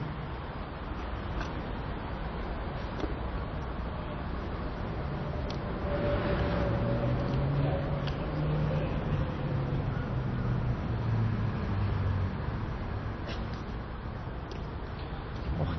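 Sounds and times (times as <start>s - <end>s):
passing car motorcycle or moped engine rumbling: 0.0s - 15.7s
road noise: 0.0s - 15.7s.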